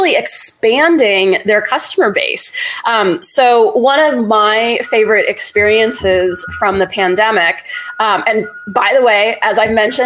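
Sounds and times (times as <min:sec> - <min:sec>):
speech: 0:00.1 - 0:10.0
truck reversing alarm electronic beep: 0:04.3 - 0:10.0.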